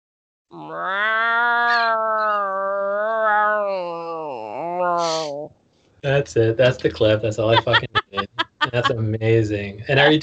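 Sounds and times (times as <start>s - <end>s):
person imitating a tomcat's mating yowl: 0.5s - 5.5s, 7.5s - 9.0s
speech: 0.7s - 1.0s, 6.1s - 10.2s
laughter: 6.1s - 10.2s.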